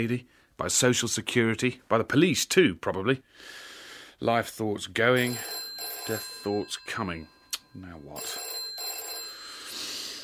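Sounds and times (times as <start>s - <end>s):
speech: 0.0s - 3.6s, 4.2s - 8.5s
telephone ringing with electronic tone: 5.2s - 10.2s.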